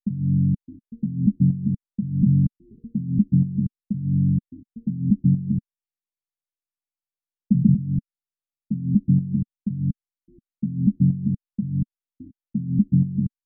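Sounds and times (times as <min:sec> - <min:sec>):
resampled bass melody loop in C sharp major: 0:00.0 - 0:05.6, 0:07.5 - 0:08.0, 0:08.7 - 0:10.0, 0:10.6 - 0:11.9, 0:12.6 - 0:13.4.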